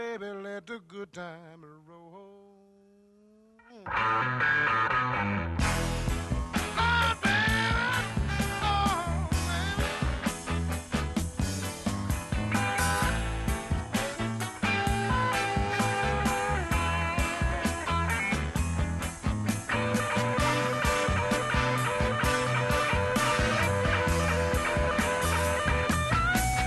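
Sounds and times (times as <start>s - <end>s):
speech: 0.2s - 2.2s, 3.7s - 5.5s
overdriven electric guitar through a Fender amp playing a driving riff: 3.8s - 26.6s
full band playing: 5.6s - 26.6s.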